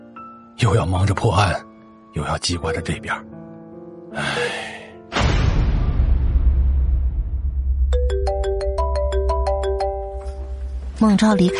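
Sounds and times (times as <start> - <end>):
speech: 0.6 - 3.4, 4.1 - 4.8, 11.0 - 11.5
phone ringing with a bright electronic ringtone melody for an incoming call: 2.6 - 3.3, 8.0 - 10.6, 11.2 - 11.5
heavy low thud and lingering rumble: 5.2 - 7.9.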